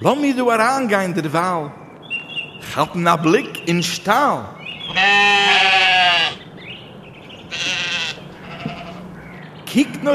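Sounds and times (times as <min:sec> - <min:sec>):
speech: 0:00.0 - 0:01.8, 0:02.6 - 0:05.7, 0:09.8 - 0:10.1
goat bleating: 0:04.8 - 0:06.4, 0:07.3 - 0:09.2.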